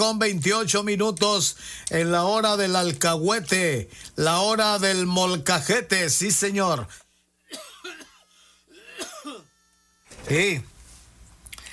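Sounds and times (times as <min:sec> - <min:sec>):
speech: 0:00.0 - 0:07.7, 0:10.3 - 0:10.7
person having a coughing fit: 0:07.5 - 0:09.5.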